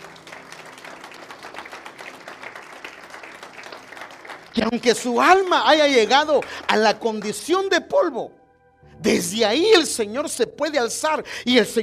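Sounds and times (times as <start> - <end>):
audience applause: 0.0 - 7.6
speech: 4.6 - 8.4, 9.0 - 11.8.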